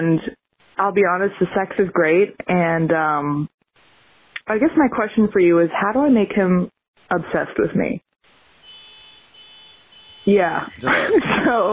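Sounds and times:
speech: 0:00.0 - 0:03.6, 0:04.5 - 0:08.1, 0:10.2 - 0:11.7
outdoor traffic noise: 0:08.3 - 0:11.7
vehicle horn honking outside: 0:08.6 - 0:11.2
laughter: 0:10.4 - 0:11.7.

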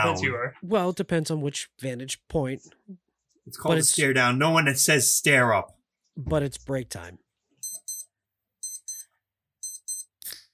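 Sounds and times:
speech: 0:00.0 - 0:07.2
electronic alarm beeping in double pulses: 0:07.6 - 0:10.2.

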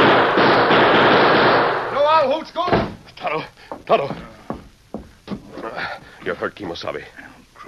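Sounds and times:
revolver gunshots in a rapid volley: 0:00.0 - 0:02.0
speech: 0:03.4 - 0:04.4, 0:06.3 - 0:07.3.

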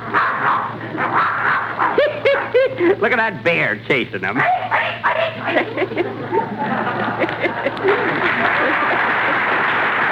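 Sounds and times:
dog barking and yapping: 0:00.1 - 0:02.6, 0:04.4 - 0:05.4
laughter: 0:02.0 - 0:03.1, 0:05.2 - 0:10.1
speech: 0:02.8 - 0:09.6.

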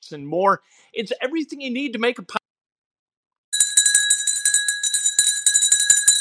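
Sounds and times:
speech: 0:00.1 - 0:02.4
bright high-pitched bell struck rapidly: 0:03.6 - 0:06.1.

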